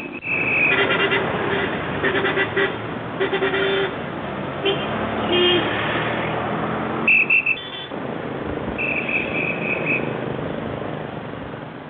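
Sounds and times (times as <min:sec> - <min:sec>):
car horns honking: 0:00.0 - 0:04.0, 0:04.6 - 0:05.9, 0:07.0 - 0:08.0, 0:08.8 - 0:10.2
busy street traffic roar: 0:00.0 - 0:11.8.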